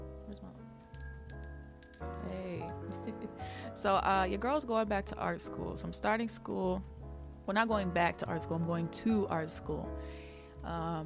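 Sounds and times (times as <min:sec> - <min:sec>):
small metallic bell ringing: 0:00.8 - 0:03.2
speech: 0:03.2 - 0:06.9, 0:07.5 - 0:11.0.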